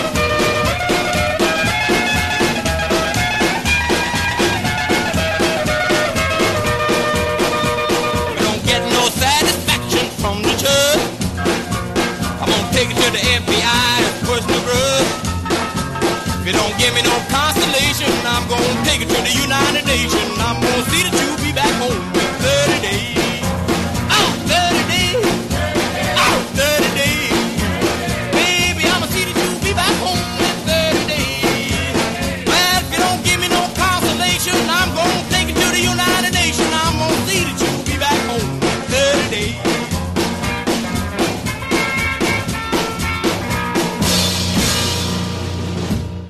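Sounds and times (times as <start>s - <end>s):
driving guitar in an upbeat rock and roll song: 0.0s - 46.2s
steady drums in an upbeat rock and roll song: 0.0s - 46.2s
person singing an upbeat rock and roll song: 7.6s - 11.2s, 12.4s - 15.2s, 16.4s - 23.5s, 24.1s - 39.9s.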